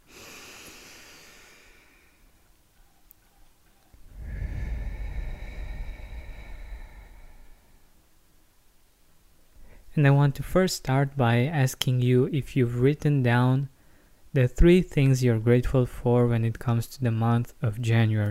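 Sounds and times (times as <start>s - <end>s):
deep breath in and out: 0.0s - 2.4s, 3.9s - 8.1s
speech: 10.0s - 13.7s, 14.3s - 18.2s.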